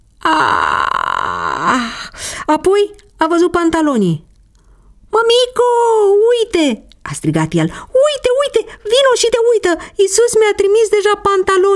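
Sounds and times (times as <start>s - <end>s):
storyteller yawning acting out a small boy waking: 0.2s - 2.4s
speech: 2.5s - 4.3s, 5.2s - 11.7s.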